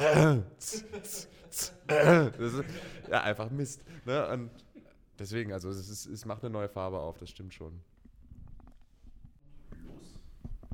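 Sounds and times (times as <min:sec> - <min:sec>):
person clearing throat: 0:00.0 - 0:02.4
speech: 0:00.0 - 0:07.9.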